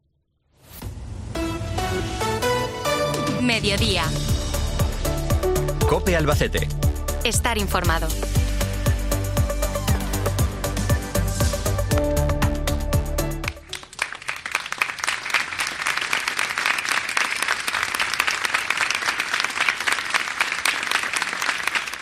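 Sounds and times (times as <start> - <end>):
music: 0.6 - 13.9
speech: 3.4 - 4.3, 5.9 - 8.4
large crowd applauding: 13.4 - 22.0.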